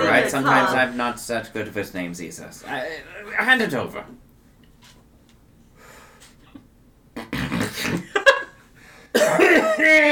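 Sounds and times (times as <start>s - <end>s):
speech: 0.1s - 4.2s
harsh raspy coughing fit: 7.2s - 8.0s, 9.1s - 9.8s.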